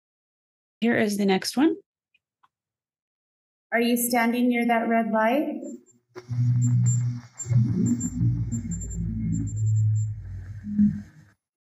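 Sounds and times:
speech: 0.8 - 1.8, 3.7 - 8.8
faint high beeps: 6.2 - 11.2
REM pod ghost-hunting device alarm warbling: 6.2 - 11.3.

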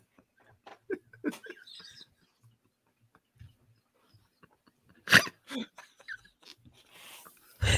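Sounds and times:
person snorting: 7.0 - 7.7.

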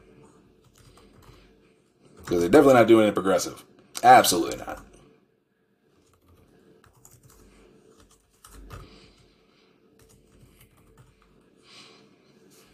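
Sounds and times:
typing on a laptop keyboard: 0.6 - 1.4, 6.0 - 9.3, 10.0 - 11.5
speech: 2.3 - 4.9.

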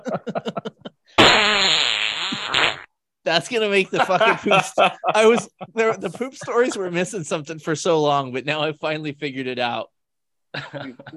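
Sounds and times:
speech: 0.0 - 0.8, 3.3 - 11.1
laughter: 0.0 - 1.1, 3.8 - 7.1, 10.6 - 11.1
fart sound effect: 1.2 - 2.9.

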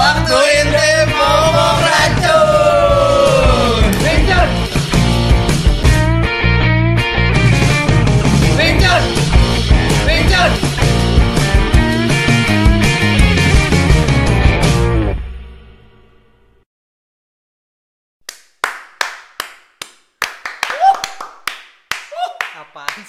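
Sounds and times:
music: 0.0 - 16.6
irregular sharp hand claps: 3.8 - 4.2, 18.2 - 23.0.

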